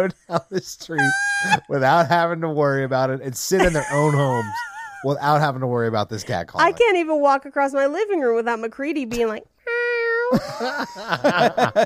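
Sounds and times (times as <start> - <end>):
speech: 0.0 - 9.5, 10.3 - 11.8
voice imitating a cat's yowling mating call: 1.0 - 1.6
laughter: 3.6 - 5.2, 10.3 - 11.8.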